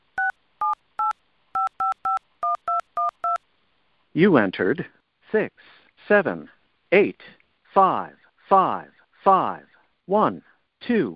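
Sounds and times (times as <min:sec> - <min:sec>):
phone keypad tones dialing a number for a monthly refill: 0:00.0 - 0:03.4
speech: 0:04.2 - 0:11.1.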